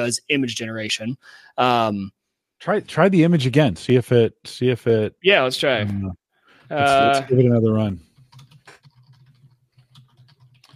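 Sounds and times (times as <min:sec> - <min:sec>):
speech: 0:00.0 - 0:08.1
typing a query on a computer keyboard: 0:08.1 - 0:10.7.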